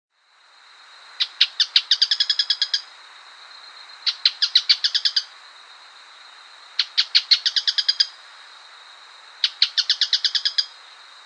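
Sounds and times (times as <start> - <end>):
bird song: 1.2 - 2.9, 3.6 - 5.4, 6.7 - 8.3, 9.4 - 11.2.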